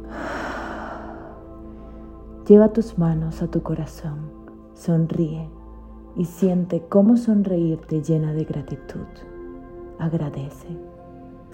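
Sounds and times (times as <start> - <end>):
forceful exhale during a breathing exercise: 0.0 - 2.1
speech: 2.5 - 5.6, 6.2 - 9.3, 10.0 - 10.9.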